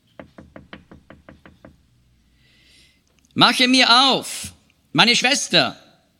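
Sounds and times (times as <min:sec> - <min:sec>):
sharp knocks on a wooden door: 0:00.2 - 0:01.9
speech: 0:03.4 - 0:05.8.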